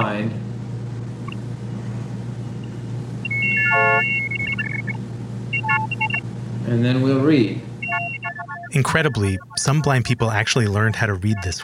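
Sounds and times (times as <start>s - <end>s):
speech: 0.0s - 0.4s, 6.7s - 7.7s, 8.7s - 11.6s
steady low hum: 0.0s - 11.6s
optophone reading-machine tones turning printed letters into sound: 2.6s - 6.3s, 7.8s - 11.6s
short scattered tone blips from an optophone: 3.2s - 5.0s, 5.6s - 6.2s, 7.8s - 10.1s.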